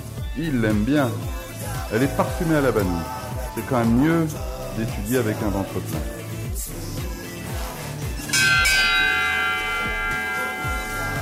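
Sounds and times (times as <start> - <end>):
speech: 0.4 - 6.7
school bell ringing: 8.3 - 11.2.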